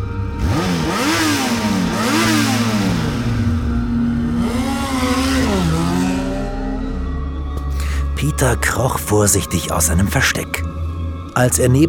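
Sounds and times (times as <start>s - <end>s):
motor vehicle engine revving and roaring off at speed: 0.0s - 7.7s
speech: 8.4s - 10.8s, 11.4s - 11.8s.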